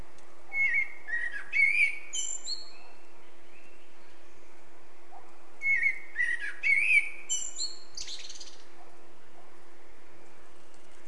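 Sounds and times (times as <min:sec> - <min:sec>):
constant low hum: 0:00.0 - 0:11.0
Eurasian blackbird Turdus merula singing: 0:00.5 - 0:04.5, 0:05.6 - 0:08.7.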